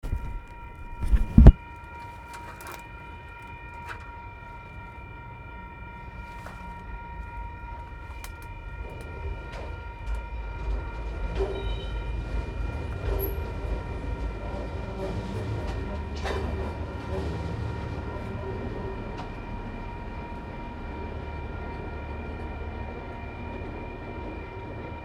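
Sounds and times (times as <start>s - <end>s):
train crossing in Port Chalmers: 0.0s - 25.0s.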